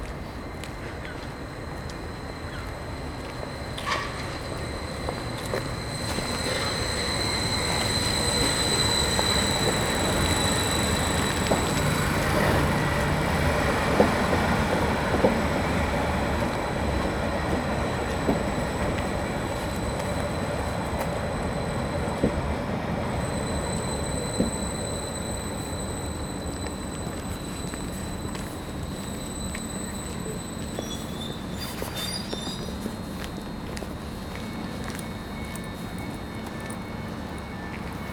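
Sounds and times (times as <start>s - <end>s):
dense steady murmur of commuters on a cold damp train platform: 0.0s - 38.1s.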